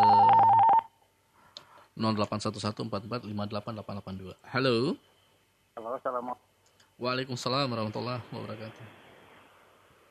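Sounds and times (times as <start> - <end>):
telephone connecting tones: 0.0 - 0.9
speech: 2.0 - 5.1, 5.8 - 9.0.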